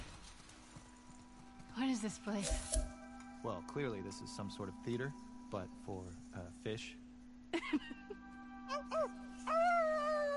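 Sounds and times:
steady low hum: 0.1s - 10.3s
speech: 2.0s - 8.3s
person imitating a wolf howl: 8.7s - 10.3s.

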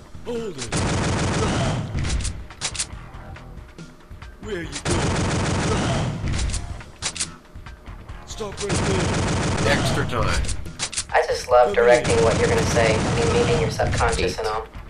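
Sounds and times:
speech: 0.2s - 1.2s, 4.5s - 5.2s, 8.4s - 14.8s
gunfire from a shooting video game: 0.6s - 2.9s, 4.8s - 7.2s, 8.6s - 10.9s, 11.8s - 14.4s.

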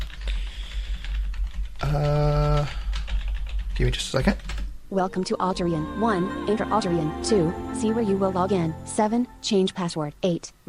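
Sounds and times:
computer keyboard keystrokes entering a password: 0.0s - 4.7s
speech: 1.8s - 2.8s, 3.8s - 10.6s.

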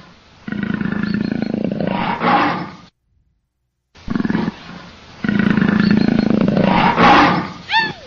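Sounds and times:
leopard deep rasping growl-roar: 0.5s - 2.9s, 4.0s - 8.0s.

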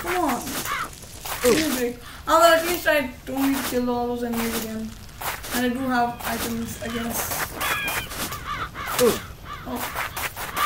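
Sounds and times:
steady hum: 0.0s - 10.6s
crow cawing in a video game: 0.5s - 1.0s, 6.1s - 10.6s
speech: 1.4s - 5.0s, 5.6s - 7.7s, 9.0s - 10.1s.

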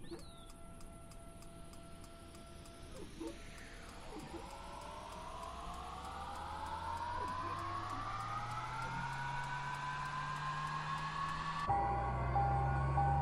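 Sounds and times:
rapid regular ticking: 0.2s - 11.7s
simulated aircraft engine starting up in a flight simulator: 2.8s - 13.1s.

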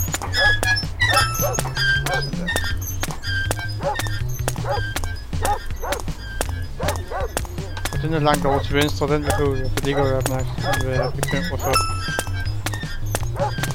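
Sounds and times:
player footsteps walking in an audio video game: 0.0s - 13.7s
dog barking in an audio video game: 0.2s - 2.4s, 3.8s - 4.8s, 5.4s - 6.1s, 6.8s - 7.4s, 8.2s - 11.8s, 13.3s - 13.7s
speech: 8.1s - 12.0s.

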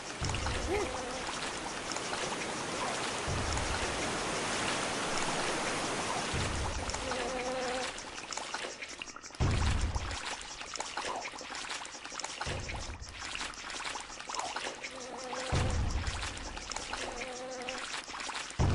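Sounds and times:
flies buzzing: 0.0s - 9.1s, 14.4s - 18.2s
rushing pouring water: 0.0s - 18.7s.

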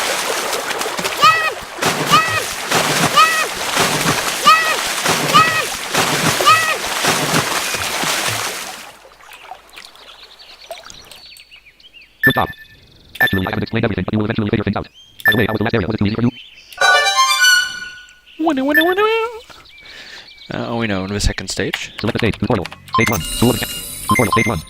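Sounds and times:
sustained rush of splashing water: 0.0s - 11.4s
speech: 13.5s - 17.5s, 18.4s - 19.4s, 20.5s - 24.6s.

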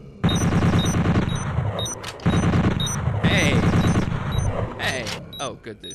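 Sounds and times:
bolt gun firing in a video game: 0.2s - 4.5s
speech: 5.4s - 5.9s.

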